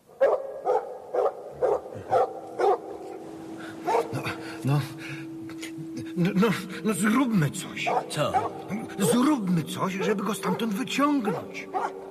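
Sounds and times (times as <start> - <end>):
dog barking from inside a well: 0.2 - 2.9, 3.8 - 4.1, 7.9 - 9.2, 11.3 - 12.0
speech: 6.4 - 12.0.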